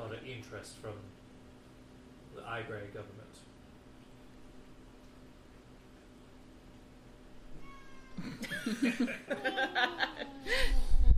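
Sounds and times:
speech: 0:00.3 - 0:01.2, 0:02.4 - 0:03.6, 0:08.2 - 0:10.8
cat meowing sleepily: 0:07.5 - 0:08.4
laughter: 0:08.2 - 0:10.5.

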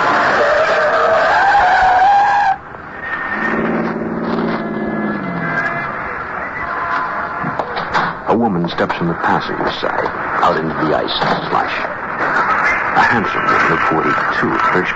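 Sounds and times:
yellow taxi tire squeal skidding on a snowy street corner: 0:00.2 - 0:07.1
yellow taxi engine rumble: 0:02.6 - 0:08.3
speech: 0:08.8 - 0:11.9, 0:13.1 - 0:14.9.

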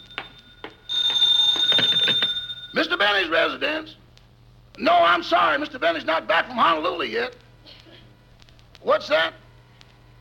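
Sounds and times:
telephone bell ringing: 0:00.0 - 0:03.1
speech: 0:02.8 - 0:04.0, 0:04.8 - 0:07.4, 0:08.8 - 0:09.4.

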